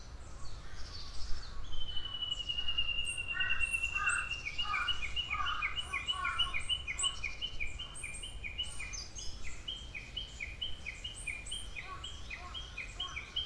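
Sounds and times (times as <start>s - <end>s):
other birds chirping and twittering: 0.0s - 13.4s
bird call with long high whistle breaking into pulses: 1.8s - 7.1s.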